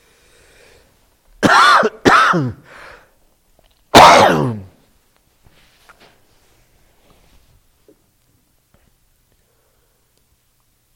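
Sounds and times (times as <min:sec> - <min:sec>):
person clearing throat: 0:01.4 - 0:02.7, 0:04.0 - 0:04.8.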